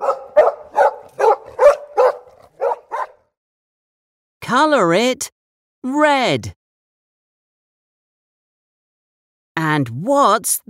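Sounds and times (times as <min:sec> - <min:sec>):
dog barking: 0:00.0 - 0:03.2
speech: 0:04.5 - 0:06.6, 0:09.6 - 0:10.6.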